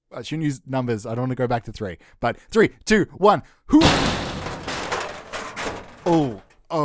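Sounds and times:
speech: 0.1s - 4.2s, 6.1s - 6.8s
man kicking against a door: 3.8s - 6.0s.

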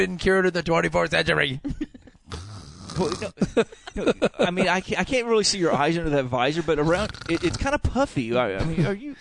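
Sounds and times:
speech: 0.0s - 1.8s, 3.0s - 9.2s
person snoring with a raspy rattling rumble: 2.3s - 3.4s, 6.8s - 7.8s
laughter: 3.4s - 5.0s.

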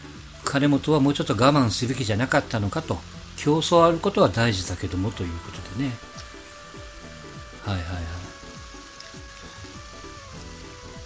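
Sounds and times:
heavy downpour rain heard through an open window: 0.0s - 11.0s
speech: 0.5s - 6.2s, 7.7s - 8.2s
soft low tones: 3.0s - 11.0s.

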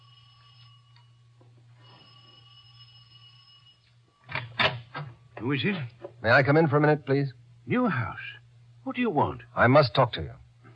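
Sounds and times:
house doorbell buzzing: 0.0s - 4.4s
speech: 5.4s - 10.4s.

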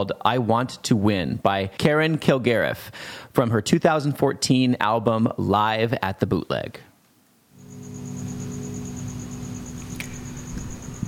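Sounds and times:
speech: 0.0s - 6.9s
steady high-pitched cricket chirping: 7.5s - 11.0s
low droning hum: 7.6s - 11.0s.

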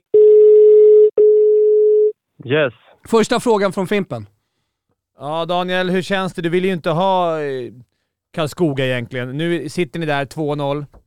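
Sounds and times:
telephone ringing tone while placing a call: 0.1s - 2.2s
speech: 2.4s - 4.3s, 5.2s - 11.0s.

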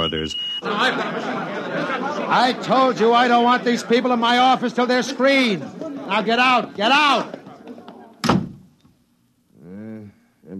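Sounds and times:
speech: 0.0s - 7.4s
laughter: 0.6s - 8.1s
office door slamming shut: 8.2s - 8.7s.

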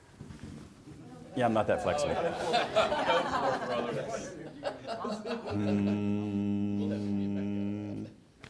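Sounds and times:
speech: 1.4s - 7.2s
soft chuckling: 2.3s - 8.2s
person murmuring: 5.4s - 8.2s
off-key low hum imitating meditation: 5.5s - 8.3s.

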